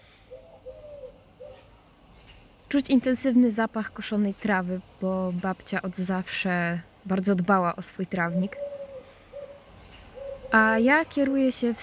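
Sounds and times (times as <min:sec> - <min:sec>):
pigeons cooing from a nearby pigeon breeding loft: 0:00.0 - 0:02.5, 0:08.0 - 0:11.8
speech: 0:02.7 - 0:08.7, 0:10.5 - 0:11.8.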